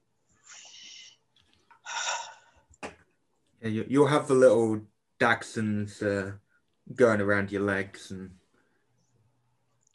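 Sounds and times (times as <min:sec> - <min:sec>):
person breathing deeply after stepping outside: 0:01.8 - 0:02.7
speech: 0:03.6 - 0:08.4.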